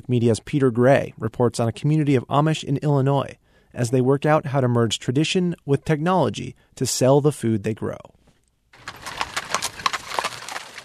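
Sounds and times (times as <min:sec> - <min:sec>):
speech: 0:00.1 - 0:08.2
horses pulling buggies clip-clopping: 0:08.8 - 0:10.8
wooden rattles of Amish buggies arriving at a gathering in Arcola, Illinois: 0:08.8 - 0:10.8.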